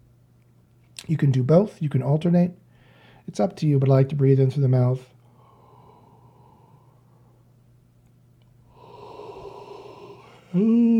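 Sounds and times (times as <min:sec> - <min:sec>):
speech: 0:01.1 - 0:02.6, 0:03.3 - 0:05.1, 0:10.6 - 0:10.8
person yawning: 0:08.8 - 0:10.9.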